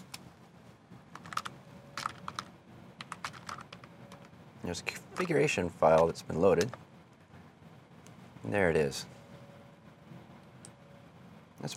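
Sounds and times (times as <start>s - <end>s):
typing on a computer keyboard: 1.2s - 4.3s
speech: 4.7s - 6.9s, 8.4s - 9.2s.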